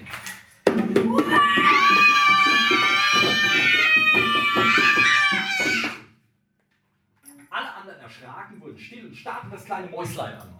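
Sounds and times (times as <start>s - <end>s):
children roaring imitating a fierce beast: 1.1s - 6.0s
speech: 9.2s - 10.5s.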